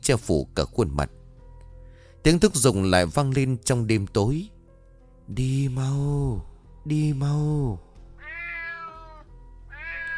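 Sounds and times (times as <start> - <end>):
speech: 0.0 - 1.2, 2.2 - 4.6, 5.3 - 7.8
cat meowing in the night: 8.2 - 10.1.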